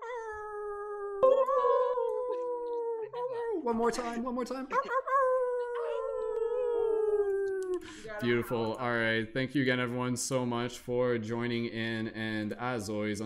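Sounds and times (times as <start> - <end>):
group of people howling like wolves for the full moon: 0.0 - 3.2, 4.8 - 7.9
speech: 3.6 - 5.3, 8.0 - 13.2.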